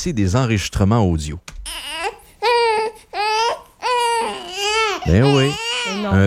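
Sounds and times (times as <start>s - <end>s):
speech: 0.0s - 2.0s, 5.0s - 6.2s
newborn baby crying in piercing wails: 1.6s - 6.2s.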